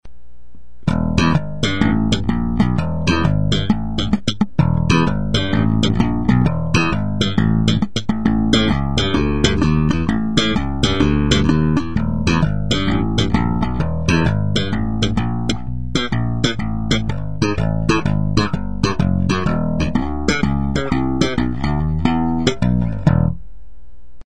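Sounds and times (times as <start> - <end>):
slap bass: 0.9 - 23.4.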